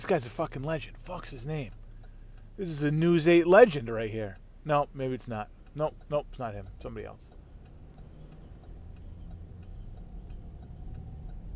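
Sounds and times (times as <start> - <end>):
speech: 0.0 - 1.8, 2.6 - 7.4
car rolling along with a steady low rumble: 0.0 - 11.5
faint rhythmic squeak of a car: 7.3 - 11.5.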